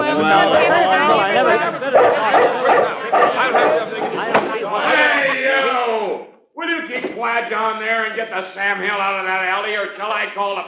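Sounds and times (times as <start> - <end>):
laughter: 0.0 - 7.6
busy jumble of chattering voices: 0.0 - 9.9
speech: 0.2 - 0.7, 7.4 - 10.6
dog barking at night in rapid loud yaps: 1.9 - 4.6.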